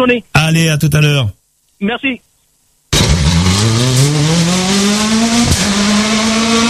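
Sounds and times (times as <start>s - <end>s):
speech: 0.0s - 2.3s, 3.6s - 4.2s
rally car engine firing up and revving hard as it pulls away: 2.9s - 6.6s.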